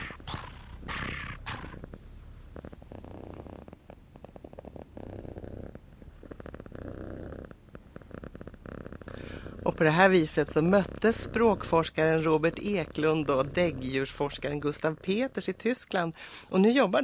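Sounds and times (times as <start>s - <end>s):
breathy hissing: 0.0s - 2.1s, 9.0s - 14.2s, 16.1s - 16.6s
cat purring: 0.0s - 17.0s
speech: 9.7s - 17.0s.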